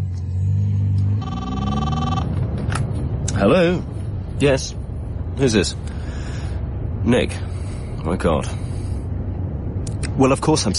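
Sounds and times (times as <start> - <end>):
idling car engine low rumble: 0.0 - 9.8
car phone electronic ring: 1.1 - 2.4
speech: 3.4 - 4.8, 5.4 - 6.4, 7.0 - 8.6, 10.2 - 10.7.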